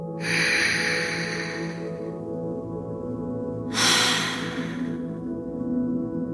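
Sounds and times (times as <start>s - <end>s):
soft steady musical drone: 0.0s - 6.3s
deep breath in and out during a guided relaxation exercise: 0.1s - 2.2s, 3.7s - 5.2s.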